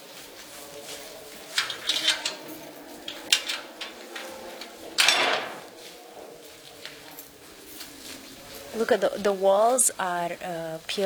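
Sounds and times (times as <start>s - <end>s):
door to an underground maze scraping open: 0.6s - 8.8s
speech: 8.8s - 11.0s.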